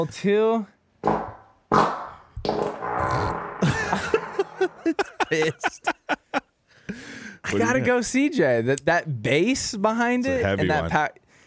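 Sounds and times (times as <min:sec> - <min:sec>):
speech: 0:00.0 - 0:00.8, 0:04.6 - 0:06.2, 0:07.4 - 0:11.2
rumbling sputtering fart with crackly pops: 0:01.0 - 0:04.8
laughter: 0:03.6 - 0:06.5.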